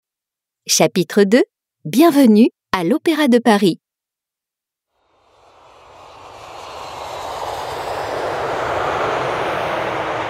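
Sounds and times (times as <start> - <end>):
speech: 0.7 - 3.8
airplane engine roar: 5.0 - 10.2.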